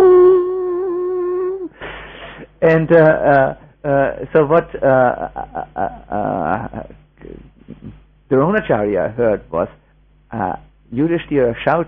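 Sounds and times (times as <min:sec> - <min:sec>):
voice imitating a conch shell being blown: 0:00.0 - 0:01.8
speech: 0:02.6 - 0:11.8.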